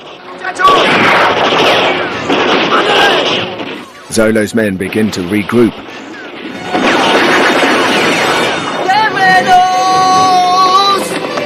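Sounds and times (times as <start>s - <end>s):
gunshot fired from a wall during a fight: 0.0s - 4.0s, 4.8s - 8.8s
rough rumble and crackle: 0.0s - 11.4s
speech: 4.1s - 6.1s.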